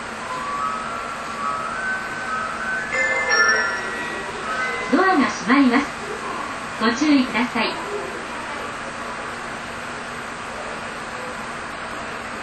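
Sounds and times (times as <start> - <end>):
commuter train rumbling, heard from onboard: 0.0 - 9.6
speech: 5.5 - 6.0, 6.8 - 7.8.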